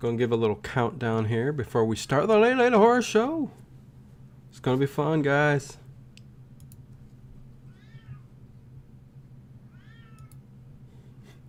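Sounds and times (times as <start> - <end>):
speech: 0.0 - 3.6, 4.5 - 5.8
steady low hum: 0.0 - 11.4
sharp clicks: 6.2 - 6.8
cat meowing: 7.7 - 8.3, 9.7 - 10.4.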